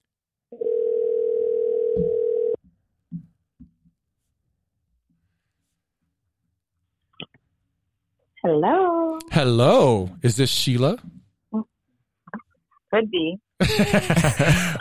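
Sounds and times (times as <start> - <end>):
loud steady phone ringback tone: 0.6 - 2.6
speech: 8.5 - 11.2, 13.0 - 14.7
laughter: 13.6 - 14.7.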